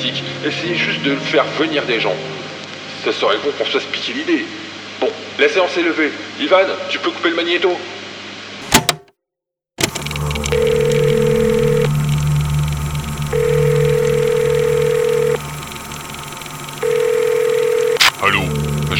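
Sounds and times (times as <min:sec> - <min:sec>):
speech: 0:00.4 - 0:02.4, 0:03.0 - 0:08.0
mobile phone ringing: 0:09.8 - 0:18.9
sharp clicks: 0:09.8 - 0:18.9
low rumbling hum: 0:10.0 - 0:18.9.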